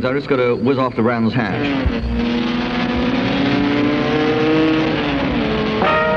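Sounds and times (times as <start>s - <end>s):
speech: 0.0s - 3.0s
racing car engine revving as the car passes: 1.4s - 6.1s.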